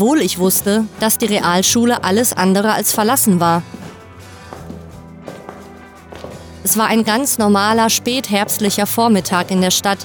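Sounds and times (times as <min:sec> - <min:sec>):
speech: 0:00.0 - 0:03.8, 0:06.6 - 0:10.0
footsteps echoing through the empty corridor of a secondary school: 0:03.6 - 0:06.8.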